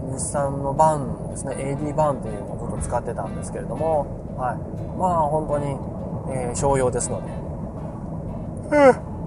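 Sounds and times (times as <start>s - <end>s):
speech: 0.2s - 7.5s, 8.7s - 9.0s
person yawning with a breathy groan: 8.7s - 9.1s.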